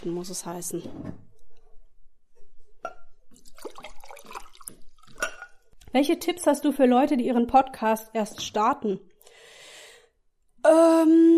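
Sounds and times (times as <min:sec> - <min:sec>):
speech: 0:00.0 - 0:01.2, 0:06.0 - 0:09.1, 0:10.6 - 0:11.3
water pouring into a glass: 0:03.3 - 0:05.7
glass clinking: 0:05.1 - 0:05.7.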